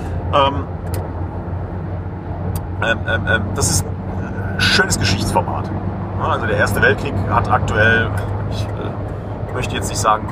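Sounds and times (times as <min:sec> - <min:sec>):
road rumble inside a moving car passing a truck: 0:00.0 - 0:10.3
speech: 0:00.3 - 0:00.8, 0:02.8 - 0:03.9, 0:04.6 - 0:10.3.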